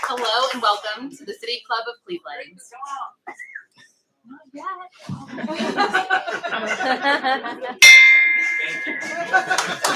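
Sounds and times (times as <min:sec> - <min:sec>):
speech: 0:00.1 - 0:03.4, 0:04.5 - 0:08.0, 0:08.7 - 0:09.9
room full of chatter and laughter: 0:05.0 - 0:09.9
bell struck at a club event: 0:07.8 - 0:09.9.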